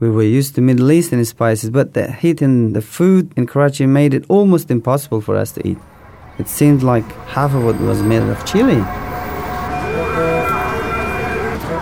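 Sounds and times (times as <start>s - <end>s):
speech: 0.0s - 9.1s
dense rumbling traffic in Karachi: 5.2s - 11.8s
emergency siren wailing in city traffic: 5.5s - 11.8s.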